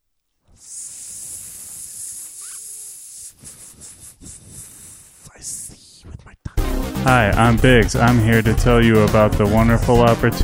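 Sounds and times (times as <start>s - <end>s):
airy snake hiss sound effect: 0.5s - 6.1s
speech: 7.0s - 10.4s.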